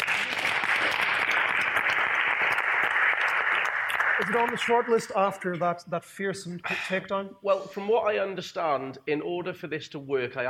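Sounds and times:
crowd applauding: 0.0 - 5.6
speech: 4.2 - 10.4.

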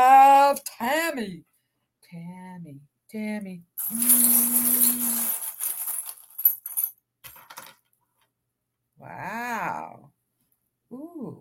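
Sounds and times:
speech: 0.6 - 1.5, 2.1 - 5.4, 9.0 - 10.0, 10.9 - 11.3
small metal pieces clattering and jingling: 3.8 - 7.8.

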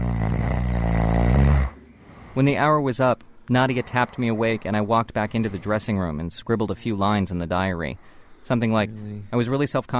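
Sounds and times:
person snoring: 0.0 - 2.4
speech: 2.4 - 9.9.

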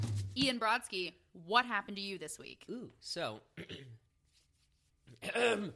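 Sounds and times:
speech: 0.5 - 3.7, 5.2 - 5.7
sick man clearing his throat: 3.6 - 4.1, 5.1 - 5.7.

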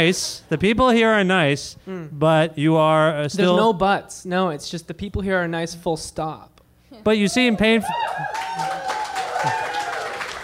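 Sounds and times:
speech: 0.0 - 8.7
audience applause: 7.5 - 10.4.

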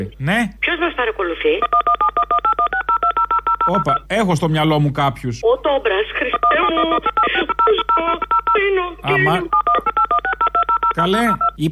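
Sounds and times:
speech: 0.0 - 2.4, 3.7 - 8.1, 8.7 - 9.6, 11.0 - 11.7
telephone keypad dialing tones: 1.6 - 4.0, 6.3 - 11.6.

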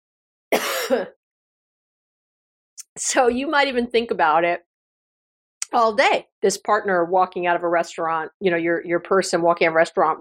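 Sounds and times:
speech: 0.5 - 1.2, 3.0 - 4.7, 5.7 - 10.2
raspy throat-clearing cough: 0.6 - 1.2.

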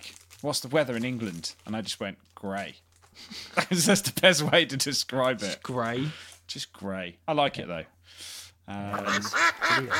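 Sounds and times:
speech: 0.0 - 9.9
duck quacking: 8.9 - 9.9.

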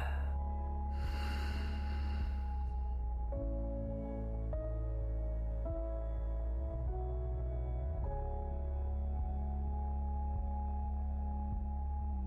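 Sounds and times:
slow deep breath in and out: 0.0 - 2.9
soft sustained synth tones: 0.0 - 12.2.

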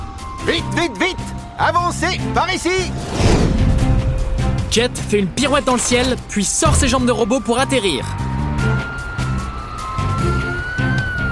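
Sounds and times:
speech: 0.4 - 3.5, 4.7 - 8.3
emergency vehicle siren wailing: 8.1 - 11.3.

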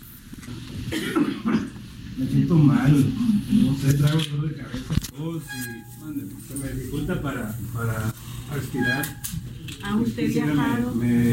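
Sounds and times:
speech: 0.9 - 1.6, 2.2 - 11.3
man forcing staged coughs in a coronavirus patient drill: 0.9 - 1.8.

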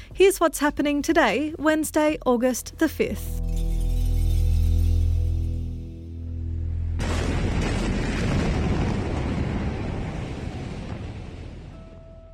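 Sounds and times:
speech: 0.2 - 3.4
low steady droning rumble: 3.4 - 9.4
enormous explosion blast with shockwave roar: 6.9 - 11.8.

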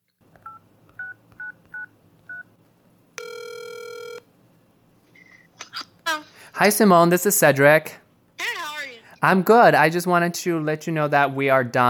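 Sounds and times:
telephone keypad dialing tones: 3.2 - 4.2
speech: 6.6 - 8.0, 9.2 - 11.8.

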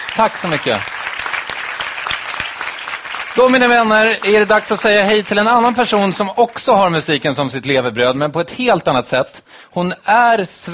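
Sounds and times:
audience applauding: 0.0 - 6.6
speech: 0.2 - 0.9, 3.4 - 10.7.

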